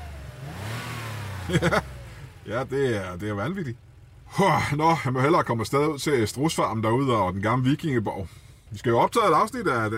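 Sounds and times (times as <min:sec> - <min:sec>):
car engine revving and accelerating: 0:00.0 - 0:04.3
speech: 0:01.5 - 0:09.9.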